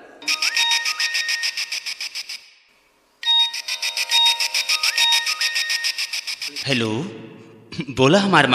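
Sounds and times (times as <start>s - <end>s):
phone ringing on an outgoing call: 0.2s - 2.4s, 3.2s - 6.7s
speech: 6.6s - 8.5s.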